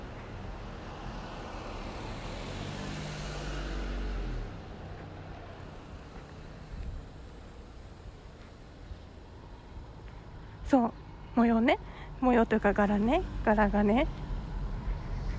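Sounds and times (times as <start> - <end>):
car approaching and passing by with engine rumble and tire noise: 0.0 - 11.3, 12.1 - 15.3
steady outdoor hum: 4.4 - 15.3
speech: 10.7 - 14.2.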